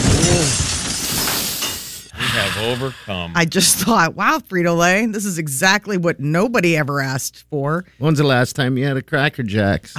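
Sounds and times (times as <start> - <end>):
glass shattering: 0.0 - 2.1
speech: 2.6 - 9.9.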